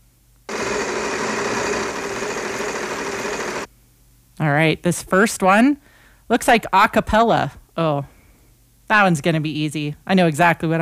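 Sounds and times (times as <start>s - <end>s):
prize wheel spinning to pick a music genre: 0.5s - 3.7s
speech: 4.4s - 8.1s, 8.9s - 10.8s.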